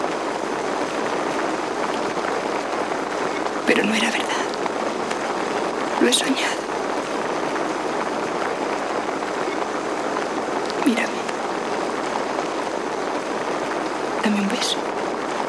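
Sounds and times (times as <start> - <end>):
dense icy rain pouring down: 0.0 - 15.4
speech: 3.7 - 4.4, 6.0 - 6.6.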